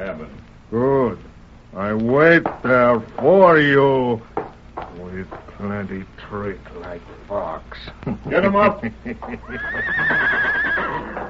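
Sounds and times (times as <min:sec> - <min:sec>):
speech: 0:00.0 - 0:04.3, 0:05.0 - 0:10.5
laughter: 0:07.8 - 0:10.2
horse neighing: 0:09.4 - 0:11.2.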